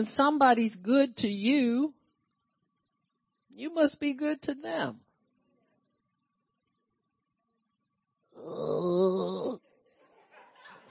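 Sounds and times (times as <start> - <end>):
speech: 0.0 - 2.0, 3.6 - 5.0, 8.4 - 9.5
audience member grunting and groaning at a healing and miracle service: 8.4 - 9.6.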